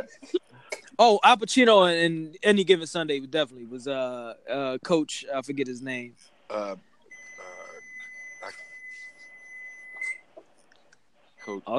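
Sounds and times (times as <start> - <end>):
speech: 0.0 - 6.9, 11.5 - 11.7
kitchen timer beeping: 7.1 - 10.1.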